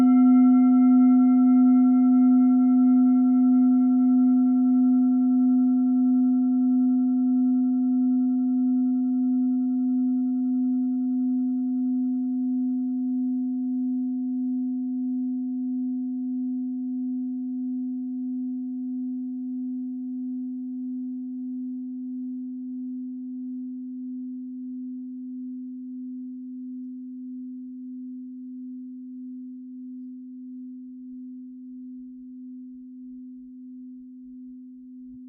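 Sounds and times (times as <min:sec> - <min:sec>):
singing bowl set: 0:00.0 - 0:20.0.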